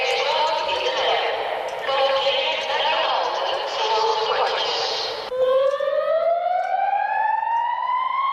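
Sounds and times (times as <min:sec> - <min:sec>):
alarm siren in a tram tunnel: 0:00.0 - 0:08.3
public announcement over loudspeakers in a tram tunnel: 0:00.0 - 0:08.3.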